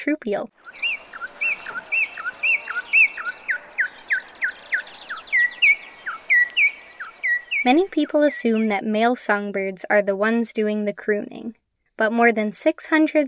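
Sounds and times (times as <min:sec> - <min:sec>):
faint background noise: 0:00.0 - 0:13.2
female Venezuelan Troupial singing: 0:00.6 - 0:08.7.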